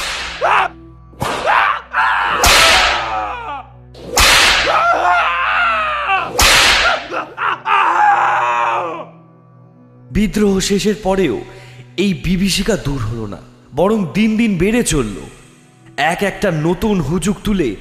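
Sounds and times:
whip lashes on captured sepoys tied to a tree: 0.0s - 0.5s, 1.2s - 1.6s, 2.4s - 3.1s, 4.0s - 4.8s, 6.2s - 7.2s
flogged victims groaning and screaming: 0.1s - 3.8s, 4.5s - 9.2s
speech: 10.2s - 15.4s, 16.0s - 17.7s.

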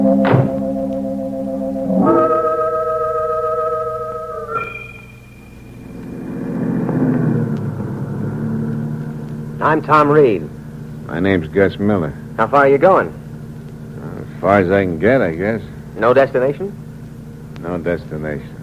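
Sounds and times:
car engine humming: 0.0s - 18.6s
thuds: 0.2s - 0.7s
car pulling away with a low rumble: 5.3s - 11.5s
speech: 9.7s - 13.2s, 14.4s - 16.8s, 17.6s - 18.6s.

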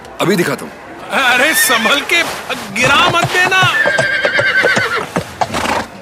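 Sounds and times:
speech: 0.2s - 5.0s
horse weighed down by a heavy rider neighing and snorting: 1.4s - 2.1s, 2.9s - 5.9s.

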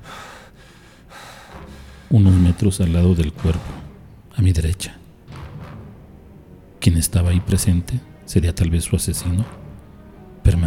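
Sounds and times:
heavy agitated breathing: 0.0s - 4.0s
speech: 2.1s - 3.8s, 4.4s - 5.0s, 6.8s - 9.6s, 10.4s - 10.6s.

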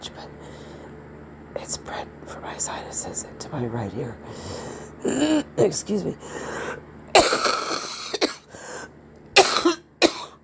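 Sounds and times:
speech: 1.7s - 6.6s
harsh coughs: 7.2s - 8.5s, 9.4s - 10.4s.

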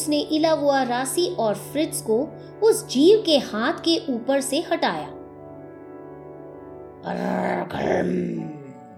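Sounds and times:
speech: 0.0s - 5.2s, 7.0s - 8.5s
human voice imitating a snarling creature with a deep guttural growl: 7.0s - 8.9s.

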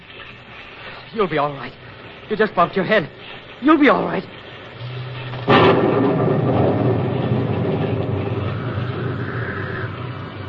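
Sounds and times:
speech: 1.1s - 4.4s
low hum: 4.3s - 10.4s
howling wind sweeping through the storm: 4.5s - 10.4s
loud crack of thunder in a storm: 5.3s - 10.4s.

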